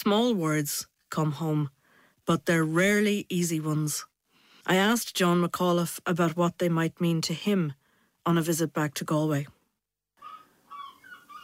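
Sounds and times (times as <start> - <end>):
speech: 0.0 - 4.1, 4.7 - 9.6
seagulls squawking outside a university tower room in Galway: 10.2 - 11.4.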